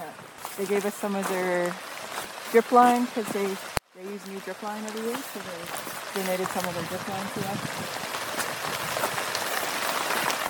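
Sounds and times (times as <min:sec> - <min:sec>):
steady rain falling outdoors by a garden and greenhouse: 0:00.0 - 0:10.4
speech: 0:00.6 - 0:01.9, 0:02.5 - 0:08.2.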